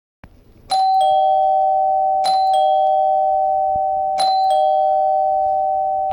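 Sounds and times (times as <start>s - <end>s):
door chime: 0.7s - 6.1s.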